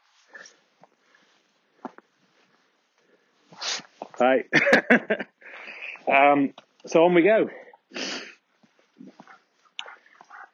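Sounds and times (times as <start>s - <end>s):
speech: 4.2s - 5.4s, 6.1s - 7.6s
dogs huffing, snorting and grunting as they tussle: 9.0s - 10.5s.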